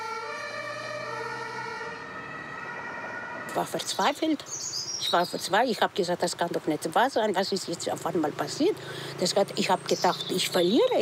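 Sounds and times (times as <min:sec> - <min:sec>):
ambulance siren wailing: 0:00.0 - 0:04.2
faint road rumble: 0:00.0 - 0:11.0
speech: 0:03.6 - 0:11.0.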